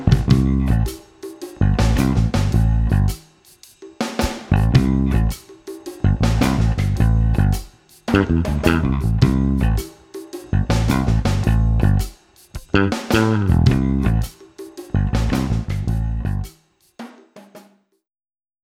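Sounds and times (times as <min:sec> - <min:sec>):
bass guitar with passive Aguilar split coil pickups: 0:00.1 - 0:03.2, 0:04.2 - 0:05.4, 0:06.0 - 0:10.0, 0:10.5 - 0:14.4, 0:14.9 - 0:16.5.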